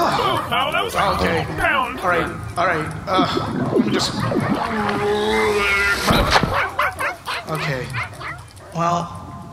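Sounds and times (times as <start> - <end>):
speech: 0.2 - 6.4, 7.5 - 8.1, 8.8 - 9.2
dog yipping and whimpering: 6.3 - 8.8.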